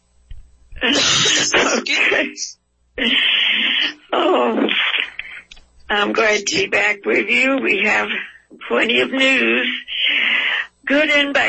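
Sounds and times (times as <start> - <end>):
coughing and throat clearing: 0.8 - 2.4
speech: 0.8 - 4.8, 5.9 - 10.0, 10.9 - 11.4.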